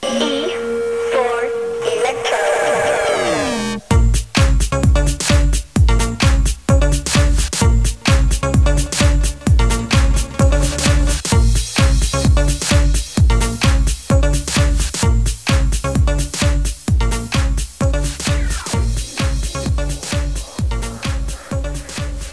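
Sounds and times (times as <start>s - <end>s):
musical chairs game music: 0.0s - 22.3s.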